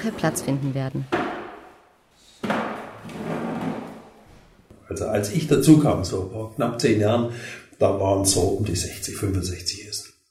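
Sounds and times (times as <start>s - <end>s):
speech: 0.0s - 1.2s, 4.9s - 10.1s
tables and chairs being dragged and shifted: 0.0s - 4.7s
sudden wooden knock: 1.1s - 1.8s, 2.4s - 4.1s.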